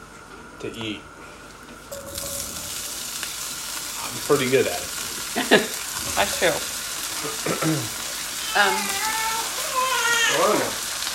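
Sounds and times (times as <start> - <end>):
speech: 0.6 - 1.1, 4.2 - 9.2, 10.3 - 10.8
zucchini sizzling in a hot pan: 1.9 - 11.1
meow-like voiced sounds: 8.4 - 10.8.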